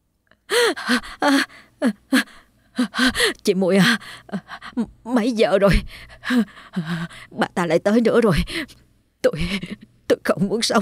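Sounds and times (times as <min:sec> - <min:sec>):
woman gasping and panting after waking suddenly from a nightmare: 0:00.5 - 0:04.9, 0:05.7 - 0:07.4, 0:08.3 - 0:09.9
speech: 0:00.7 - 0:10.8.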